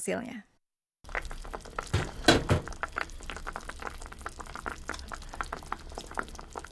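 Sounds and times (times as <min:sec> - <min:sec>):
speech: 0:00.0 - 0:00.5
chicken broth simmering in a pot: 0:01.0 - 0:06.6
brief clatter: 0:02.0 - 0:02.8.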